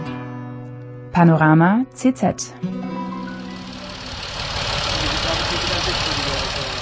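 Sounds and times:
speech: 1.2 - 2.9
tractor engine idling and rumbling: 3.1 - 6.7.

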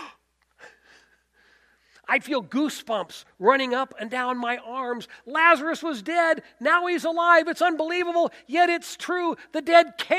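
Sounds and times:
person gasping: 0.0 - 2.0
speech: 2.1 - 10.1.

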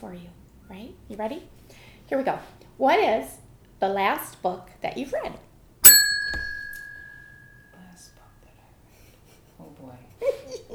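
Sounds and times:
speech: 0.0 - 5.5
bright bell strike: 5.9 - 7.6.

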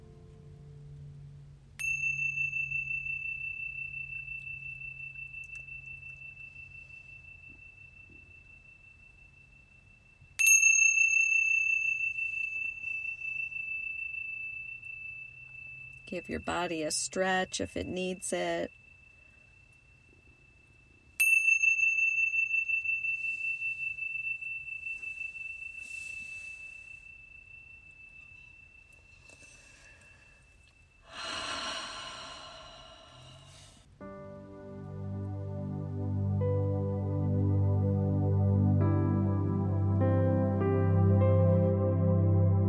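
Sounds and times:
soft low hum: 0.0 - 42.6
meditation chime ringing: 1.8 - 33.9
speech: 16.1 - 18.8.

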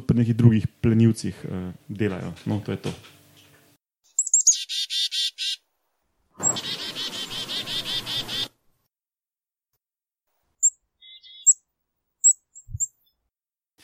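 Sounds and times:
speech: 0.1 - 3.2
small bird squeaky alarm calls: 4.1 - 5.6, 6.4 - 8.5, 10.6 - 11.6.

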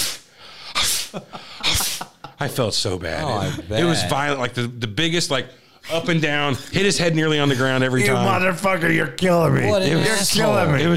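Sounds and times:
voice imitating a dog sneezing from smoke blown in its face: 0.0 - 2.1
speech: 1.1 - 1.8, 2.4 - 10.9.

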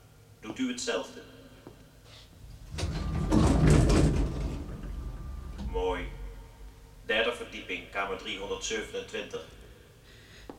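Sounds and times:
speech: 0.5 - 1.4, 5.8 - 6.2, 7.1 - 9.6
fingerprint-operated door sliding open in an advertising agency building: 2.4 - 7.1.

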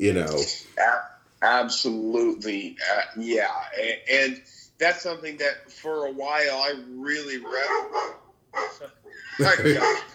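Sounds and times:
speech: 0.0 - 10.1
dogs barking at a rabbit: 7.4 - 8.9, 9.6 - 10.1
laughter: 9.1 - 10.1.

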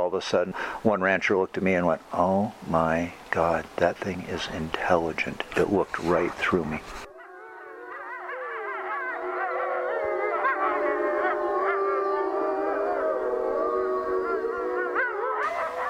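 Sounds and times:
speech: 0.1 - 7.0
chorus of wolves howling in Colorado: 7.1 - 15.8.

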